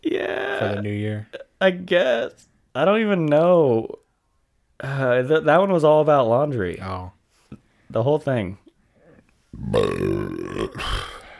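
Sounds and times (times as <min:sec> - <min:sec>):
speech: 0:00.1 - 0:04.0, 0:04.8 - 0:07.2, 0:07.9 - 0:08.6, 0:09.5 - 0:11.1
quiet breath: 0:08.8 - 0:09.5, 0:10.8 - 0:11.3
long loud burp: 0:09.6 - 0:11.3.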